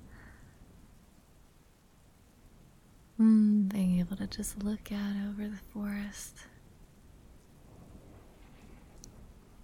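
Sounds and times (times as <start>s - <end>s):
rain pattering outside an awning at night: 0.0s - 9.6s
speech: 3.2s - 6.6s.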